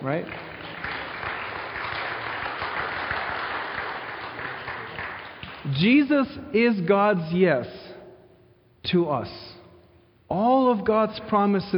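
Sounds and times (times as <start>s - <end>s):
speech: 0.0s - 0.5s, 5.7s - 7.8s, 8.9s - 9.5s, 10.3s - 11.7s
large crowd applauding and cheering: 0.0s - 5.7s.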